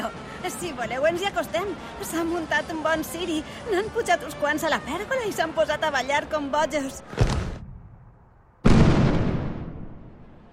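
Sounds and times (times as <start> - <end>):
speech: 0.5 - 7.3
loud fireworks bangs of a warning volley: 8.6 - 10.5.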